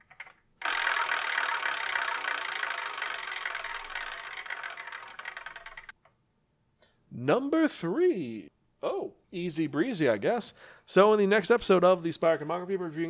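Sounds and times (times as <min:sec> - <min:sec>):
prize wheel spinning: 0:00.0 - 0:06.0
speech: 0:07.2 - 0:13.0.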